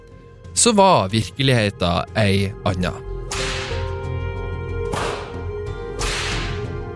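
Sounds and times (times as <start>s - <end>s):
speech: 0.6s - 3.1s
whip cracking: 3.3s - 3.9s, 4.9s - 5.4s, 6.0s - 6.8s.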